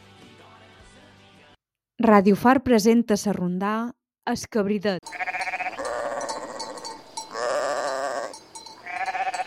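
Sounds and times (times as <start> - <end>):
speech: 2.0 - 5.3
goat bleating: 5.0 - 9.4.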